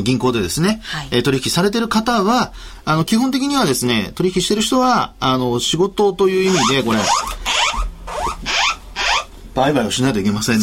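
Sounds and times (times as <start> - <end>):
speech: 0.0 - 7.8, 9.6 - 10.6
earthquake early warning emergency alert tone: 6.5 - 9.3.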